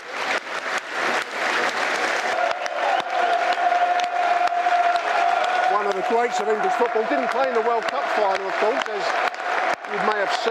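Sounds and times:
large football stadium crowd applauding: 0.0 - 10.4
speech: 6.1 - 9.3, 9.9 - 10.4.

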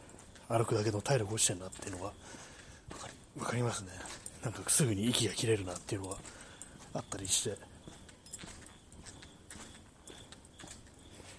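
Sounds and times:
footsteps in high-tech sneakers squeaking while walking: 0.0 - 11.3
speech: 0.5 - 8.5.

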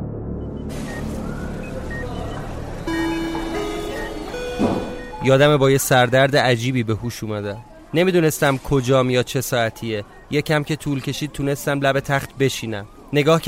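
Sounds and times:
car horn in a street: 2.9 - 5.3
speech: 5.3 - 13.4.

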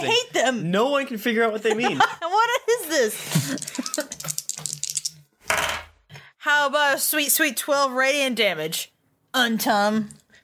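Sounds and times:
speech: 0.1 - 4.3, 6.5 - 10.2
percentile dice clattering across a tabletop: 3.6 - 5.8.

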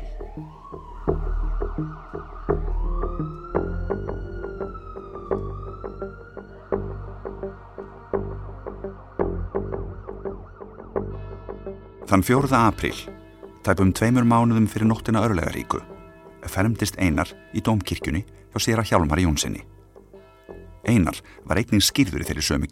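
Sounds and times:
ambulance siren wailing: 0.0 - 13.5
speech: 1.8 - 2.0, 12.1 - 19.7, 20.9 - 22.7.

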